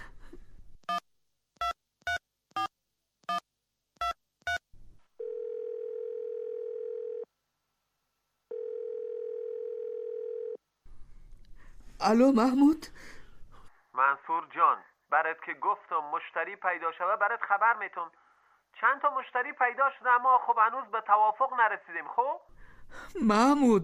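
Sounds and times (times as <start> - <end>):
long steady telephone ringing tones: 5.2 - 7.3, 8.5 - 10.6
speech: 12.0 - 13.1, 14.3 - 18.2, 18.8 - 22.4, 23.1 - 23.8.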